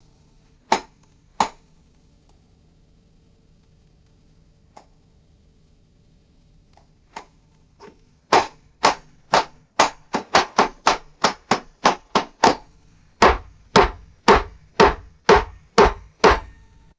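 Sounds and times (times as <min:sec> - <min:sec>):
small metal tack hammered into wood: 0:08.3 - 0:16.6.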